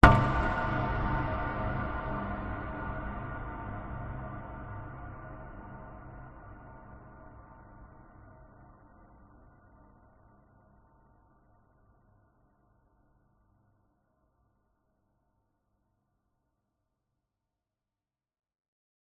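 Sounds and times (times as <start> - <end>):
dark reverberant cinematic hit: 0.0 - 6.5.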